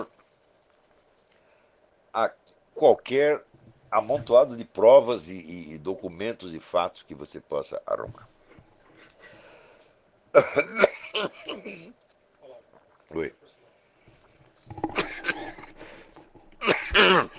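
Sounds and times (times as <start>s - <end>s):
speech: 2.2s - 8.3s, 10.3s - 12.0s, 13.1s - 13.6s, 17.0s - 17.3s
person coughing: 10.4s - 11.9s, 14.8s - 15.8s, 16.6s - 17.3s
throat clearing: 14.7s - 15.8s, 16.6s - 17.3s.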